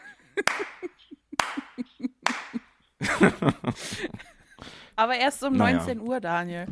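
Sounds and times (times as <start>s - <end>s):
mixed laughter: 0.0s - 4.4s
hand claps: 0.4s - 2.7s
speech: 3.2s - 4.2s, 5.0s - 6.7s.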